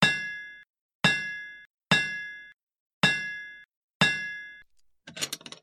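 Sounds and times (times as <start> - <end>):
hammer: 0.0 - 0.5, 1.1 - 4.6.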